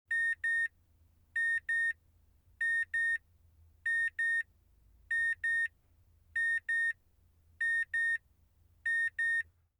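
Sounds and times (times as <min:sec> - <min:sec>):
car beeping: 0:00.1 - 0:00.7, 0:01.4 - 0:02.0, 0:02.6 - 0:03.2, 0:03.9 - 0:04.5, 0:05.1 - 0:05.7, 0:06.4 - 0:07.0, 0:07.6 - 0:08.2, 0:08.9 - 0:09.5.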